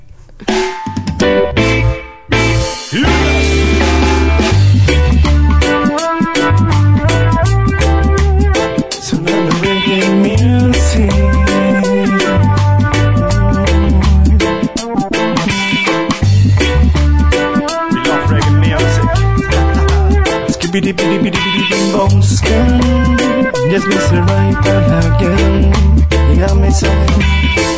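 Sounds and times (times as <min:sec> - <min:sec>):
offbeat reggae rhythm guitar: 0:00.3 - 0:27.7
speech: 0:00.4 - 0:01.5
deep bouncing reggae bassline: 0:00.4 - 0:27.7
person singing a reggae song in English: 0:02.9 - 0:04.6, 0:07.8 - 0:15.2, 0:17.7 - 0:27.7.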